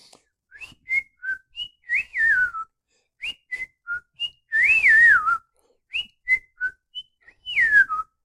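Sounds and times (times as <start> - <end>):
person whistling a short bright melody: 0.5 - 8.2.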